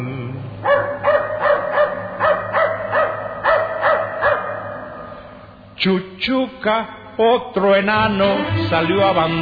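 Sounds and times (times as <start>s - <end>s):
low hum: 0.0s - 8.2s
dog barking: 0.6s - 5.2s
speech: 5.8s - 9.4s.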